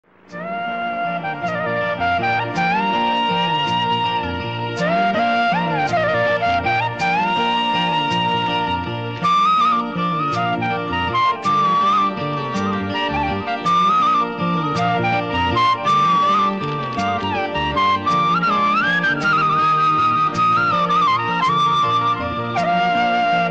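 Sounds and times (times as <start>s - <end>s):
Indian classical flute: 0.3s - 23.5s.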